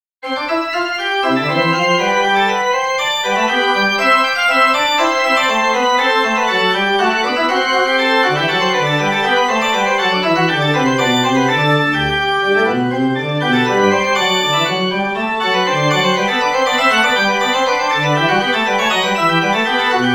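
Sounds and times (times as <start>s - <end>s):
baroque invention on organ: 0.2s - 20.1s.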